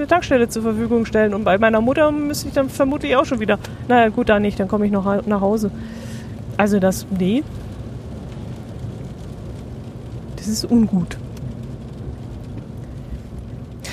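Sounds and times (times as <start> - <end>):
speech: 0.0 - 7.6, 10.4 - 11.2
road and cabin noise inside a small Smart electric car while driving: 0.0 - 13.9.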